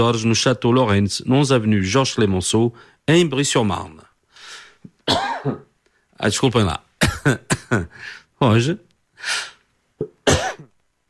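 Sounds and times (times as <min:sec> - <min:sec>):
speech: 0:00.0 - 0:04.1, 0:05.1 - 0:05.6, 0:06.2 - 0:10.6
person coughing: 0:05.0 - 0:05.7, 0:07.0 - 0:08.0, 0:10.0 - 0:10.7.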